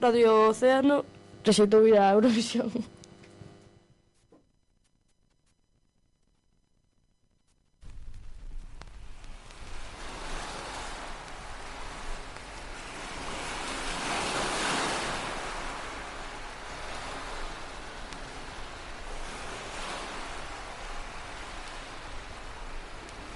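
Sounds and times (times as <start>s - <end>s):
speech: 0.0s - 3.0s
North Sea ocean waves: 8.9s - 23.3s.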